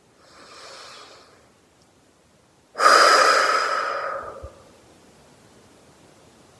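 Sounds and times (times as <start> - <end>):
deep breath in and out: 0.2 - 1.4, 2.8 - 4.7.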